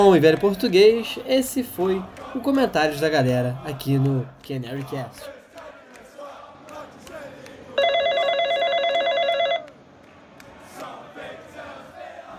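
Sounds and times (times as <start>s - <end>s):
speech: 0.0s - 5.4s
electronic telephone ringing: 7.8s - 9.7s.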